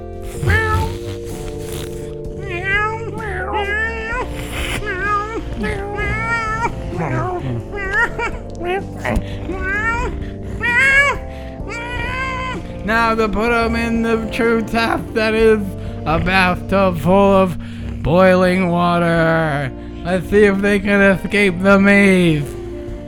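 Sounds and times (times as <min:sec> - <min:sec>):
several cats meowing inside a giant plastic bag: 0:00.0 - 0:12.9
speech: 0:12.9 - 0:22.6.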